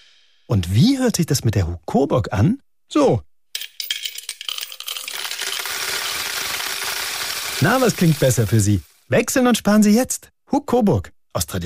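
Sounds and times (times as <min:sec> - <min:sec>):
speech: 0:00.5 - 0:03.3, 0:07.6 - 0:11.6
coins dropping into a piggy bank: 0:03.6 - 0:08.9.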